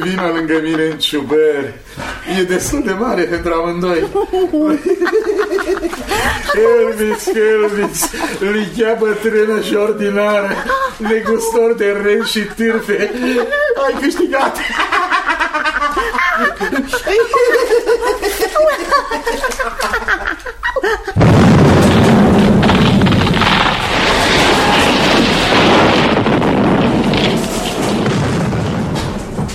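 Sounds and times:
speech: 0.0 - 15.0, 16.0 - 22.4
person laughing and chattering: 4.0 - 8.5, 10.4 - 21.2
loud explosion with heavy roaring rumble: 21.2 - 29.5.

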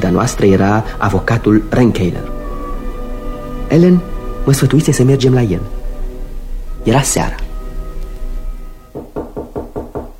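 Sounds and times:
low steady droning background: 0.0 - 9.0
speech: 0.1 - 2.4, 3.7 - 5.8, 6.8 - 7.4
sharp knocks on a door at a lawyer's house: 8.9 - 10.1.

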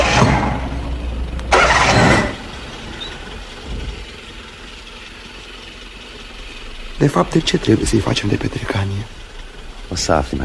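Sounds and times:
car engine cranking and starting: 0.0 - 10.4
speech: 0.2 - 0.4, 7.0 - 9.2, 9.9 - 10.4.

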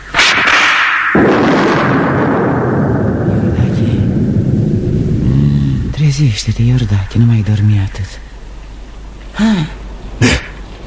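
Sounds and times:
sustained noisy rush: 0.0 - 9.2
whip crack: 0.1 - 3.8
speech: 6.2 - 8.2, 9.4 - 10.4.

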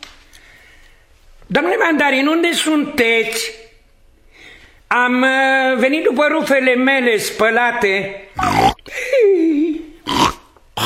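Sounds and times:
speech: 1.5 - 3.6, 4.9 - 8.7
pig grunting in short rough bursts: 8.4 - 8.8, 10.0 - 10.8.

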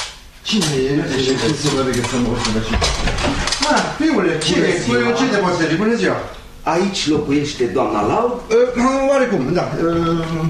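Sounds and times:
speech: 0.4 - 10.4
dishes and cutlery clattering while washing up: 0.6 - 3.9.

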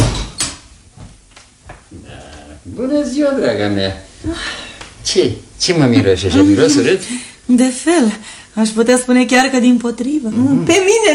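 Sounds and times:
elevator door settling knocks and clunks: 0.0 - 0.6
speech: 2.6 - 11.1.

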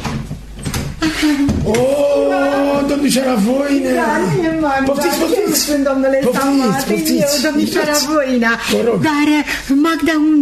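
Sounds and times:
door creaking as it swings: 0.0 - 2.1
speech: 1.0 - 10.3.

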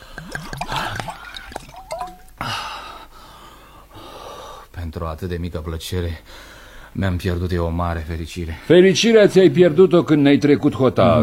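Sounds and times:
liquid splashing: 0.0 - 2.4
person drinking water in wet gulps and slurps: 0.0 - 2.5
speech: 4.9 - 11.2.

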